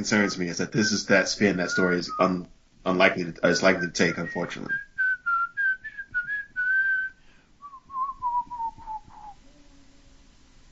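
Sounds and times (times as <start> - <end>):
speech: 0.0 - 4.9
faint noise: 0.0 - 10.7
person whistling a short wandering melody: 3.8 - 9.4.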